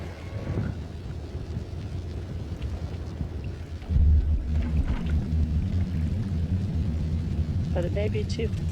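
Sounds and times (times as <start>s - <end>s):
deep sustained boat horn droning: 0.0s - 1.1s, 3.9s - 8.7s
steady wind rumble: 0.0s - 8.7s
speech: 7.8s - 8.7s.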